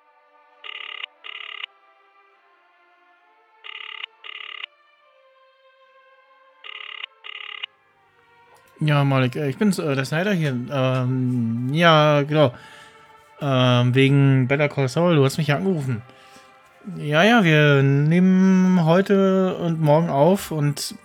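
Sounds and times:
telephone keypad tones: 0:00.7 - 0:01.6, 0:03.6 - 0:04.7, 0:06.7 - 0:07.7
speech: 0:08.8 - 0:12.8, 0:13.4 - 0:16.2, 0:16.9 - 0:21.0.

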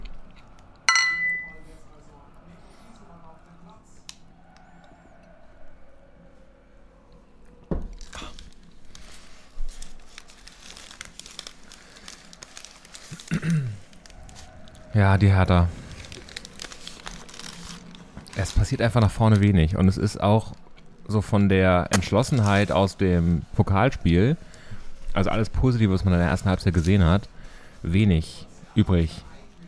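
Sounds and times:
glasses clinking together in a toast: 0:00.9 - 0:01.6
low talk: 0:01.6 - 0:05.5
speech: 0:15.0 - 0:15.8, 0:18.4 - 0:24.5, 0:25.2 - 0:29.3.

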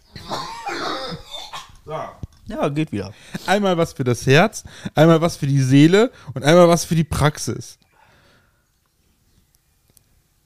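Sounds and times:
person coughing: 0:00.2 - 0:02.2
speech: 0:01.9 - 0:07.8.

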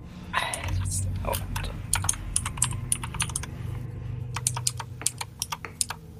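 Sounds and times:
steady low hum: 0:00.0 - 0:06.1
loud computer keyboard typing: 0:00.5 - 0:03.6, 0:04.3 - 0:06.1.

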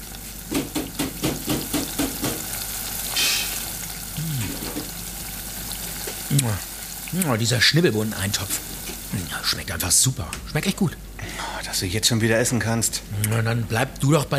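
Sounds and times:
beer fridge humming: 0:00.0 - 0:10.6
deep fryer sizzling: 0:00.0 - 0:11.7
speech: 0:06.3 - 0:14.3.

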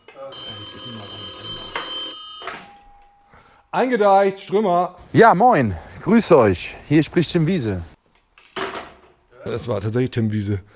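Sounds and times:
telephone ringing with an electronic trill: 0:00.2 - 0:03.4
speech: 0:03.7 - 0:07.9, 0:09.4 - 0:10.7.

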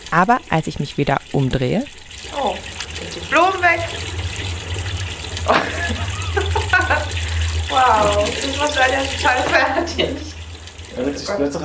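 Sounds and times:
low hum: 0:00.0 - 0:11.6
water pouring into watering can: 0:00.0 - 0:11.6
speech: 0:00.1 - 0:04.2, 0:06.9 - 0:10.4, 0:11.0 - 0:11.6
laughter: 0:05.4 - 0:10.4.

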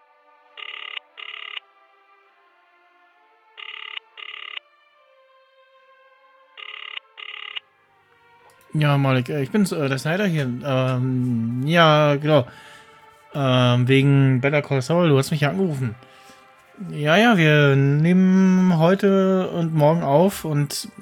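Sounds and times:
faint double rings of a telephone line ringing out: 0:00.6 - 0:01.6, 0:03.6 - 0:04.6, 0:06.6 - 0:07.6
telephone number dialed with touch-tone beeps: 0:00.6 - 0:01.6, 0:03.6 - 0:04.6, 0:06.6 - 0:07.6
speech: 0:08.7 - 0:12.7, 0:13.3 - 0:16.1, 0:16.8 - 0:21.0.

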